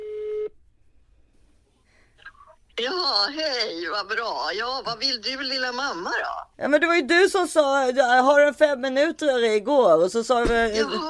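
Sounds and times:
telephone tone while calling someone: 0.0 - 0.5
speech: 2.8 - 11.0.

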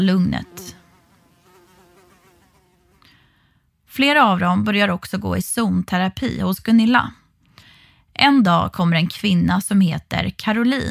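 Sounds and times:
speech: 0.0 - 0.8, 4.0 - 7.2, 8.2 - 10.8
angry bees buzzing: 0.0 - 3.1.

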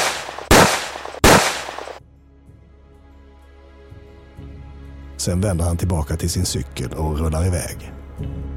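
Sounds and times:
pistol gunshots: 0.0 - 2.0
speech: 5.2 - 8.4.

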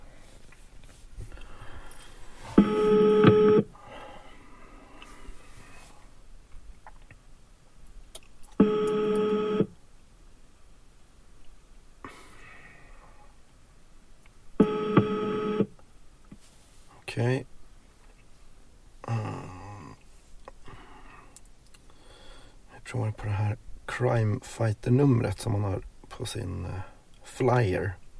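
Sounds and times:
faint hiss: 0.0 - 28.1
phone ringback tones through the earpiece: 2.6 - 3.7, 8.6 - 9.7, 14.6 - 15.6
speech: 24.0 - 28.0.

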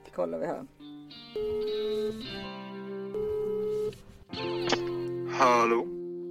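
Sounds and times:
speech: 0.2 - 2.4, 5.4 - 5.9
outgoing phone call ringing tone through a handset: 1.4 - 2.4, 3.1 - 3.9.

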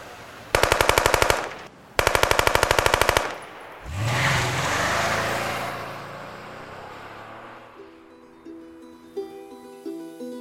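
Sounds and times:
automatic weapon gunfire on a street in central Malmö Sweden: 0.6 - 3.8
grey Saab 9-5 engine revving as it accelerates away: 3.8 - 8.4.

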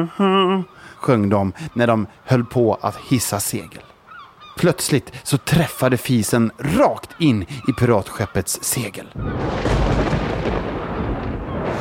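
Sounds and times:
speech: 0.0 - 3.9, 4.6 - 10.7
deep rumbling boom: 9.2 - 11.7.

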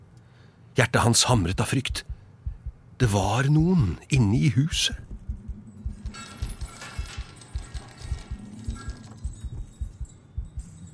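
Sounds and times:
speech: 0.8 - 2.2, 3.0 - 5.1
dull low thuds: 1.6 - 2.9, 3.6 - 10.9
heavy chains clattering and rattling, dragged up a staircase in a hall: 5.0 - 10.9.

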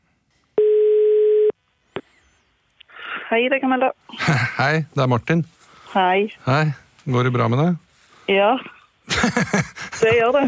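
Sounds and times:
phone ringback tone while calling: 0.6 - 1.5
speech: 3.3 - 10.4
laughter: 9.1 - 10.4.

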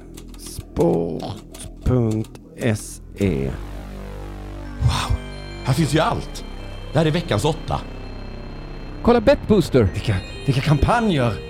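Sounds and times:
typing on a well-polished computer keyboard: 0.0 - 2.8
speech: 0.8 - 3.7, 5.6 - 8.0, 9.0 - 11.4.

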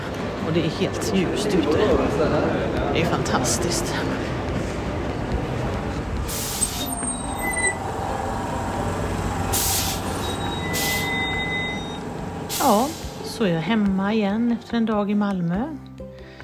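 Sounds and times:
tram rumbling along its rails: 0.0 - 14.6
speech: 0.5 - 4.4, 12.7 - 15.9
high-pitched tram wheel squeals and hisses: 6.3 - 8.2, 9.4 - 12.8.

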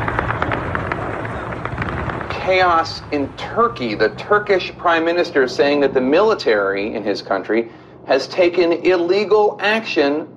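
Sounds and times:
distant gunfire: 0.0 - 3.1
steady dense rumble of noise: 0.0 - 10.3
speech: 2.5 - 10.3.

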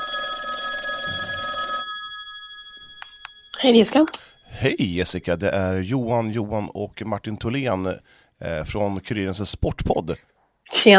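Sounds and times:
telephone ring tone on an outgoing call: 0.0 - 5.5
speech: 3.6 - 10.9.

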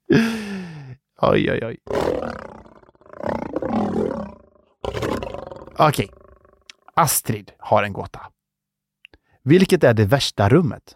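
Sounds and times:
speech: 1.2 - 2.2, 5.8 - 6.2, 7.0 - 8.3, 9.5 - 10.9
lion roar sound effect: 1.8 - 6.8.

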